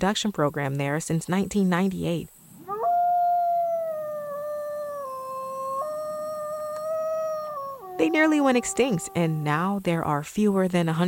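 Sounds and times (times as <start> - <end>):
speech: 0.0 - 2.4, 8.0 - 11.0
Mexican gray wolf howling in the Gila: 2.6 - 9.6.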